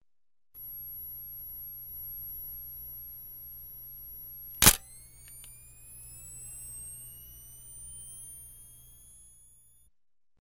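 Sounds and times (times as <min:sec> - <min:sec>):
photo camera flash charging: 0:00.6 - 0:09.9
photo camera click: 0:04.5 - 0:09.5.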